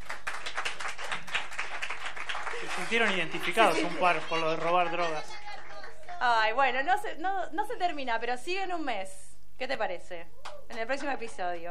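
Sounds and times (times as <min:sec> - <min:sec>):
audience applause: 0:00.0 - 0:06.4
speech: 0:02.8 - 0:05.4, 0:06.2 - 0:11.7.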